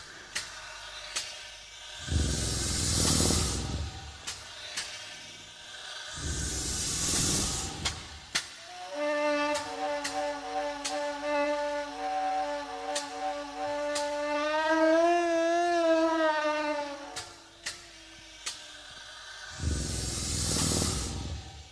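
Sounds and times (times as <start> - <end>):
loud breathy hissing blasts: 0.0 - 21.7
reconstructed mammoth call from a device recreating throat and nasal cavities: 8.7 - 17.4.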